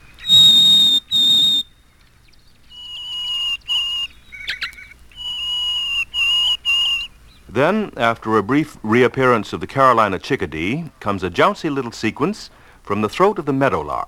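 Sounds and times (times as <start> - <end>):
Harris's sparrow song of clear whistled notes: 0.0 - 7.5
speech: 7.6 - 14.0.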